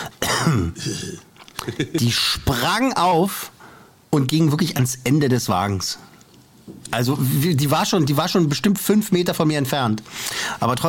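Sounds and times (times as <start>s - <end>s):
voice imitating a raspy bronchitis cough: 0.0s - 1.2s
speech: 0.5s - 6.1s, 6.7s - 10.8s.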